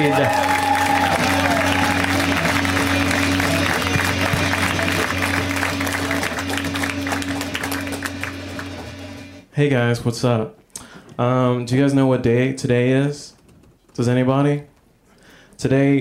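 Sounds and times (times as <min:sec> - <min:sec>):
audience applause for a comedian: 0:00.0 - 0:09.4
low hum: 0:00.7 - 0:09.4
speech: 0:09.6 - 0:10.6, 0:11.2 - 0:13.3, 0:14.0 - 0:14.7, 0:15.6 - 0:15.9.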